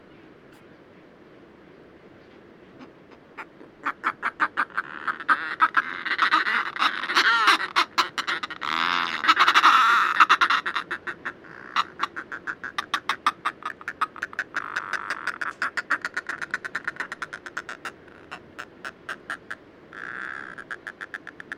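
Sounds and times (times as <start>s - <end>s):
storm petrel calling: 2.2s - 21.5s.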